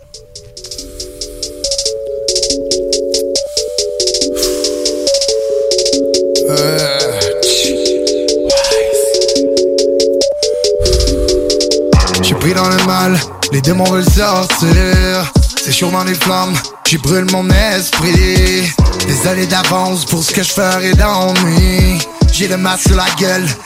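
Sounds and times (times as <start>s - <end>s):
rapid ticking hi-hats of a rap track: 0.0s - 6.7s, 7.4s - 23.6s
repeating synth melody of a rap track: 0.2s - 14.8s
deep bass of a rap track: 10.8s - 15.2s
speech: 13.0s - 23.6s.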